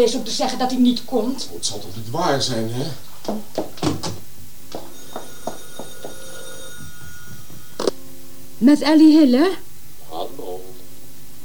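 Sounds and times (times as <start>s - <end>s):
speech: 0.0s - 4.0s, 8.6s - 10.7s
telephone bell ringing: 4.8s - 7.9s.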